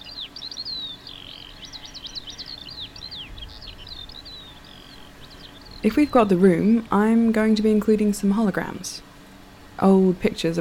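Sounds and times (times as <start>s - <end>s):
birds singing with high chirps and twittering calls: 0.0s - 10.6s
soft low rumble of noise: 0.0s - 10.6s
speech: 5.8s - 9.1s, 9.8s - 10.6s.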